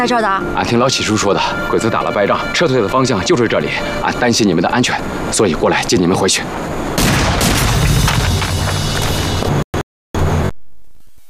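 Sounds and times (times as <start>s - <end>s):
speech: 0.0s - 7.2s
lingering rumble: 0.0s - 9.6s
booming blasts: 6.9s - 9.5s
dense barrage of gunfire: 7.0s - 9.3s.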